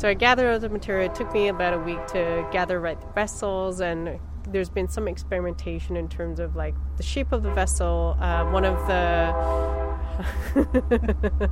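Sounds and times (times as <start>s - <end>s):
train rumbling past: 0.0s - 11.2s
speech: 0.0s - 11.5s
train horn sounding a multi-toned blast: 0.8s - 3.2s, 7.4s - 10.2s
laughter: 10.2s - 11.5s.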